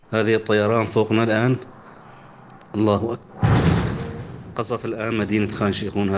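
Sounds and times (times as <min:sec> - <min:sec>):
people talking: 0:00.0 - 0:01.7, 0:02.8 - 0:03.2, 0:04.6 - 0:06.1
airstrike explosion striking at night: 0:03.3 - 0:05.6.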